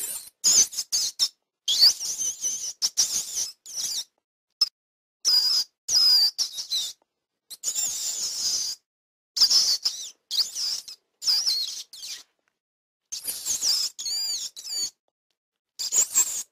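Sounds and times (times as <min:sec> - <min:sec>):
rat squeaking: 0:00.0 - 0:04.2, 0:05.3 - 0:08.8, 0:09.4 - 0:12.3, 0:13.1 - 0:15.0, 0:15.8 - 0:16.5.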